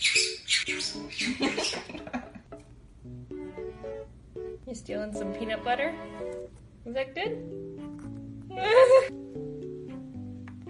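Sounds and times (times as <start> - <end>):
pet bird screaming from the top of its tower: 0.0 - 1.8
speech: 4.9 - 7.8, 8.6 - 9.2.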